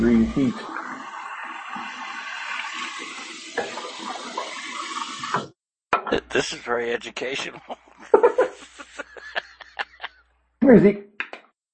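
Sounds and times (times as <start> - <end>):
speech: 0.0 - 0.8, 6.4 - 7.8, 10.7 - 11.1
tap water running into a dog's bowl: 0.0 - 5.5
laughter: 6.1 - 10.2.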